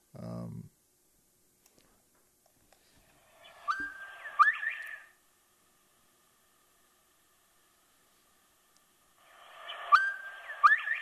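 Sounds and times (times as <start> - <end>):
faint hiss: 0.0 - 10.9
northern bobwhite quail whistling mating call: 3.4 - 5.1, 9.5 - 10.9.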